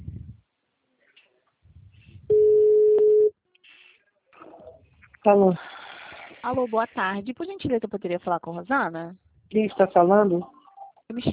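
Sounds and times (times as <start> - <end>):
ringing tone on an outgoing telephone call: 2.3 - 3.3
speech: 5.2 - 5.7, 6.4 - 11.3.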